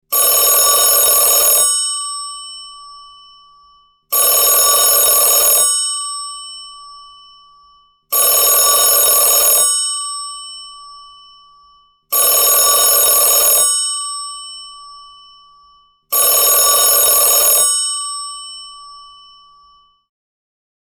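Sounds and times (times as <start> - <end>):
old fashioned telephone ringing: 0.1 - 3.1, 4.1 - 7.1, 8.1 - 11.2, 12.1 - 15.3, 16.1 - 19.5.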